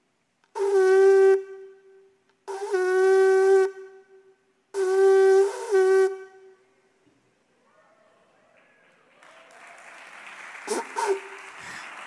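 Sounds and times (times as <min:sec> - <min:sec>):
shofar sounding shevarim call blasts: 0:00.6 - 0:06.7, 0:10.7 - 0:11.4.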